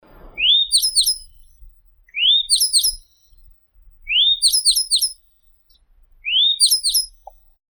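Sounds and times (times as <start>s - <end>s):
grey bunting Emberiza variabilis singing: 0.2s - 7.6s.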